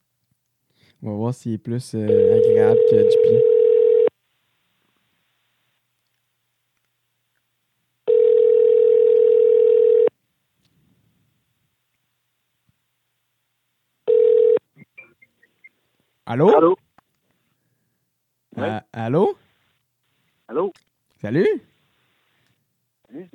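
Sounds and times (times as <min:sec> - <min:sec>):
speech: 0:01.0 - 0:03.6, 0:16.3 - 0:16.8, 0:18.6 - 0:19.4, 0:20.6 - 0:21.7
ringback tone of an outgoing telephone call: 0:02.1 - 0:04.1, 0:08.1 - 0:10.1, 0:14.1 - 0:14.6.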